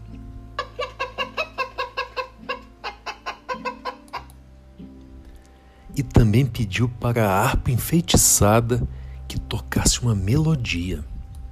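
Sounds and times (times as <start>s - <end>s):
hen clucking: 0.6s - 4.3s
low droning hum: 4.4s - 11.4s
speech: 6.0s - 11.1s.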